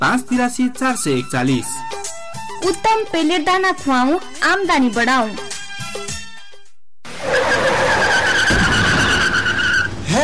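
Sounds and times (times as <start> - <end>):
speech: 0.0 - 1.8, 2.6 - 5.5
rough car engine and road noise: 7.1 - 10.2
car tyres skidding in a radio-advert sound effect: 7.2 - 10.2.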